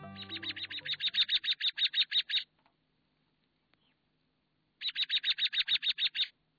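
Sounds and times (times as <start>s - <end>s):
American robin sharp repeated chirps: 0.0s - 2.5s, 4.8s - 6.3s.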